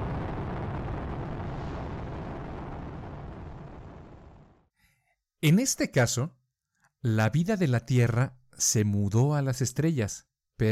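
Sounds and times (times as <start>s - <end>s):
powerful rocket launch rumble: 0.0s - 4.7s
speech: 5.4s - 6.4s, 7.0s - 10.7s.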